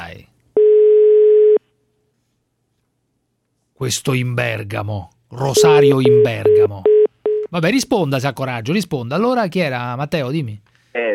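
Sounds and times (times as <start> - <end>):
telephone tone after a caller hangs up: 0.6 - 1.6, 5.6 - 7.4
speech: 3.8 - 6.9, 7.5 - 11.0.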